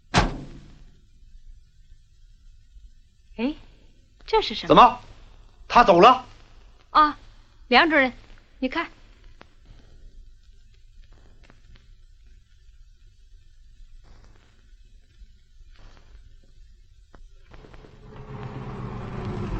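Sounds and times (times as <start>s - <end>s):
speech: 4.3s - 5.1s, 5.7s - 6.3s, 6.9s - 9.0s
truck engine rumbling: 17.6s - 19.5s.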